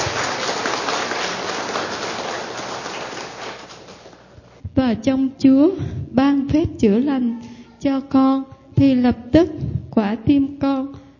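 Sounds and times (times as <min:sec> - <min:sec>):
large crowd applauding: 0:00.0 - 0:04.3
speech: 0:04.9 - 0:11.0.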